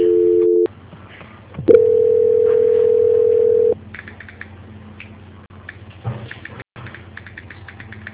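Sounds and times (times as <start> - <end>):
telephone tones during a call transfer: 0.0 - 0.7, 1.7 - 3.8
quieter telephone line noise: 1.7 - 3.8.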